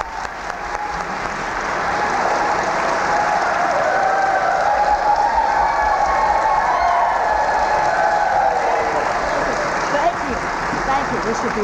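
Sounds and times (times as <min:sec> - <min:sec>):
audience applause: 0:00.0 - 0:11.6.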